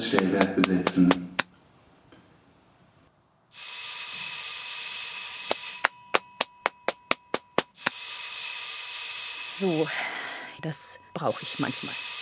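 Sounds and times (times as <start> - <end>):
speech: 0.1 - 1.3, 9.6 - 12.1
electric bell ringing as the third bell signal in a theatre: 3.5 - 12.1.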